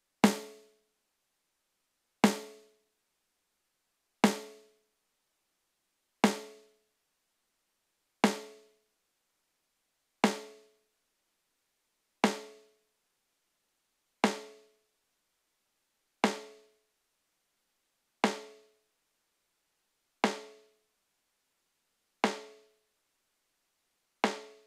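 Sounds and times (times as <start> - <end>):
snare drum: 0.2 - 0.7, 2.2 - 2.7, 4.2 - 4.7, 6.2 - 6.7, 8.2 - 8.6, 10.2 - 10.7, 12.2 - 12.7, 14.2 - 14.7, 16.2 - 16.7, 18.2 - 18.7, 20.2 - 20.7, 22.2 - 22.7, 24.2 - 24.6.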